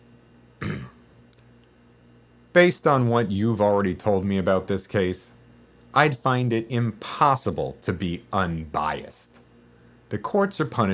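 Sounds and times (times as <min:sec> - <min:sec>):
man clearing throat: 0:00.6 - 0:01.0
speech: 0:02.6 - 0:05.4, 0:06.0 - 0:09.3, 0:10.1 - 0:10.9.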